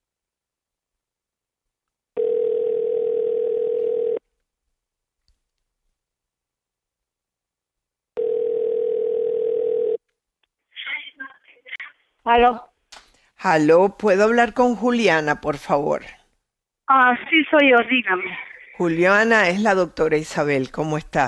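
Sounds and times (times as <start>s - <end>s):
ringback tone of an outgoing telephone call: 2.2s - 4.2s, 8.2s - 10.0s
speech: 12.3s - 12.7s, 13.4s - 16.2s, 16.9s - 21.2s
voice briefly answering the telephone: 16.9s - 19.7s.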